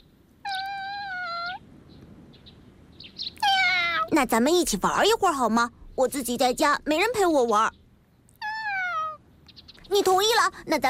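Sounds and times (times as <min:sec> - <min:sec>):
faint chirpy cat sounds: 0:00.0 - 0:02.5, 0:03.1 - 0:04.2, 0:08.2 - 0:09.9
cat meowing: 0:00.4 - 0:01.6, 0:03.4 - 0:04.2, 0:08.4 - 0:09.2
speech: 0:04.1 - 0:07.8, 0:10.0 - 0:10.8.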